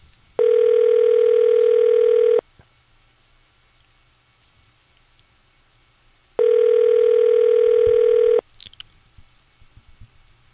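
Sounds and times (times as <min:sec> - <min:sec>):
ringback tone of an outgoing telephone call: 0:00.4 - 0:02.4, 0:06.4 - 0:08.4.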